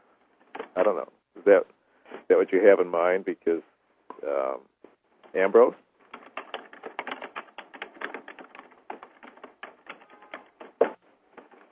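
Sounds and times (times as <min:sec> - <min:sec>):
speech: 0:00.8 - 0:04.7, 0:05.3 - 0:05.8
typing on a keyboard: 0:06.1 - 0:11.6.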